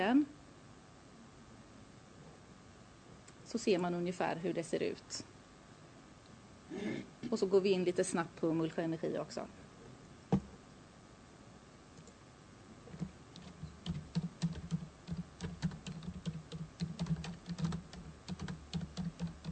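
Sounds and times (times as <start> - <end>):
speech: 0.0 - 0.4, 3.5 - 5.4, 6.7 - 9.6
low hum: 0.0 - 19.5
computer keyboard typing a website search: 12.9 - 19.5.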